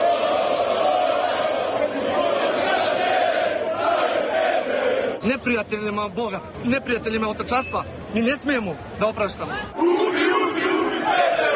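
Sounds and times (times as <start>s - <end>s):
hostile crowd of fans and patriotic groups roaring and shouting: 0.0s - 5.2s, 9.6s - 11.5s
speech: 5.2s - 10.2s.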